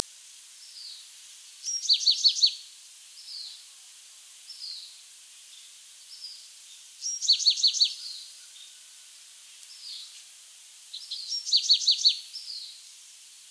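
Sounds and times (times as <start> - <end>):
light background hiss: 0.0 - 13.4
Bewick's wren Thryomanes bewickii song: 0.6 - 3.6, 4.5 - 9.0, 9.6 - 10.2, 10.9 - 12.9.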